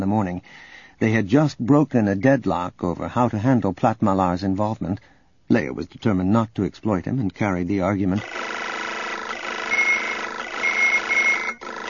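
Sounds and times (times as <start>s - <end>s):
speech: 0.0s - 8.7s
steady mechanical hum: 8.2s - 11.8s
short high electronic warning alarm chirps from several devices: 9.4s - 11.6s.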